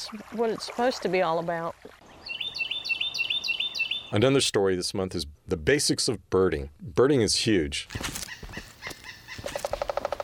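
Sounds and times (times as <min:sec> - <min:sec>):
speech: 0:00.1 - 0:02.0, 0:04.1 - 0:08.2
pileated woodpecker calling: 0:02.1 - 0:04.2, 0:07.9 - 0:10.2.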